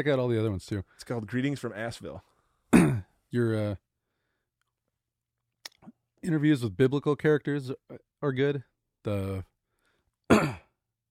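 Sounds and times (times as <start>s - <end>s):
speech: 0.0s - 3.8s, 5.8s - 9.5s, 10.3s - 10.6s
person coughing: 2.7s - 3.1s, 10.3s - 10.8s.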